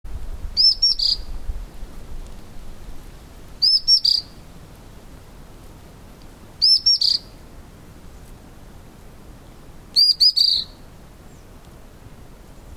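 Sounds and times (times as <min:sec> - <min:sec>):
soft steady background hiss: 0:00.1 - 0:12.7
white-browed fulvetta chirping song: 0:00.6 - 0:01.3, 0:03.6 - 0:04.4, 0:06.6 - 0:07.4, 0:09.4 - 0:11.5.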